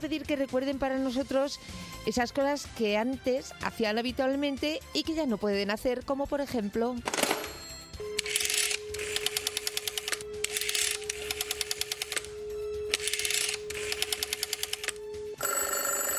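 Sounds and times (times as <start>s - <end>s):
speech: 0.0s - 7.3s
loud buzzing telephone ring: 7.1s - 16.1s
rotary telephone dial clicking pulses: 8.2s - 12.3s, 12.9s - 15.0s
telephone dial tone: 15.4s - 16.1s.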